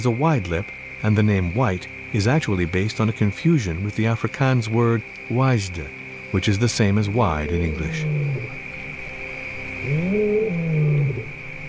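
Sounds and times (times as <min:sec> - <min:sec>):
speech: 0:00.0 - 0:08.6, 0:09.8 - 0:11.4
steady insect drone: 0:00.0 - 0:11.6
lion roar: 0:07.4 - 0:08.6, 0:09.8 - 0:11.4.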